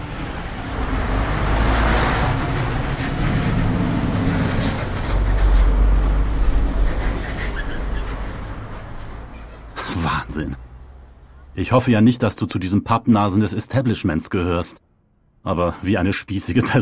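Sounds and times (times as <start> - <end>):
cars and heavier vehicles passing: 0.0 - 16.8
street traffic rumbling: 0.0 - 16.8
speech: 10.4 - 10.6, 11.6 - 14.8, 15.4 - 16.8.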